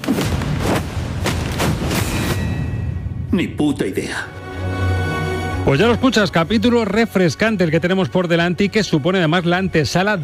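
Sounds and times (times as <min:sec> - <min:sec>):
heavy booming gunshots in a film scene: 0:00.0 - 0:02.5
speech: 0:03.4 - 0:04.8, 0:05.6 - 0:10.2.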